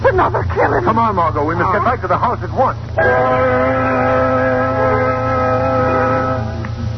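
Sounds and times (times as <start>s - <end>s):
car engine humming: 0.0s - 6.9s
speech: 0.2s - 4.2s.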